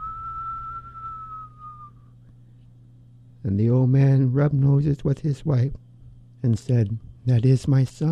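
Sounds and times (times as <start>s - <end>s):
person whistling a long note imitating the north wind: 0.0s - 2.1s
faint low hum: 0.0s - 8.0s
speech: 3.4s - 8.0s.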